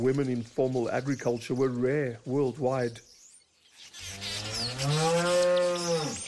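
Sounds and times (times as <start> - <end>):
speech: 0.0 - 3.1
Jersey cow mooing on a dairy farm: 4.4 - 6.2.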